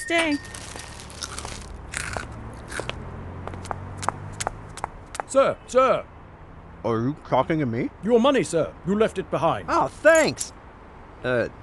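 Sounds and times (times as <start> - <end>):
speech: 0.0 - 0.7, 5.3 - 6.1, 6.8 - 10.6, 11.2 - 11.6
crunching on crunchy broccoli clumps: 0.4 - 3.0.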